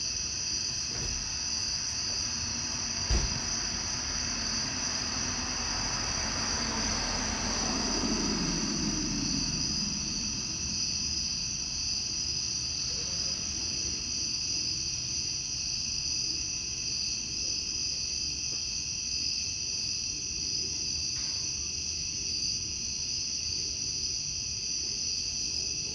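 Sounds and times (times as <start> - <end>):
cicadas buzzing outdoors in summer: 0.0 - 25.9
car driving by: 0.9 - 12.6.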